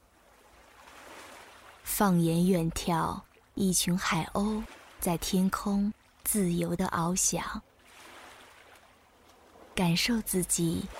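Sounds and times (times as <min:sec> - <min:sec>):
calm sea waves lapping on a beach: 0:00.0 - 0:10.9
speech: 0:02.0 - 0:07.7, 0:09.8 - 0:10.9.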